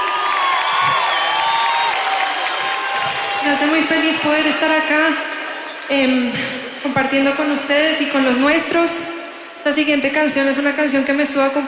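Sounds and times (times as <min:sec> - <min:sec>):
audience clapping: 0:00.0 - 0:04.8
audience cheering with whoops and shouts: 0:00.0 - 0:05.9
speech: 0:03.5 - 0:05.3, 0:05.9 - 0:11.6.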